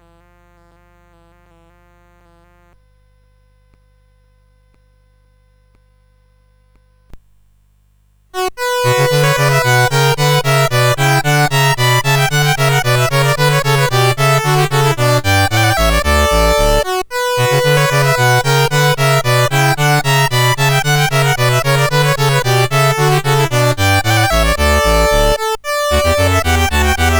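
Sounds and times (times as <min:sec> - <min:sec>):
bouree on CSG8580R5 sound chip: 0:08.4 - 0:27.1.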